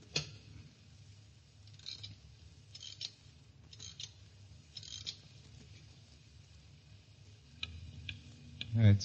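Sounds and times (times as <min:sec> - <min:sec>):
low steady hum: 0:00.0 - 0:09.0
clock being wound with soft crisp mechanical clicks: 0:01.7 - 0:05.2
speech: 0:08.8 - 0:09.0.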